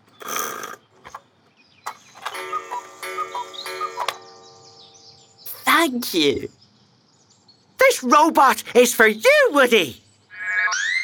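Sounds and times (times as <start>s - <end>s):
clock ticking: 2.3s - 4.9s
sustained ringing tone: 2.3s - 5.6s
speech: 5.8s - 6.6s, 8.0s - 10.0s.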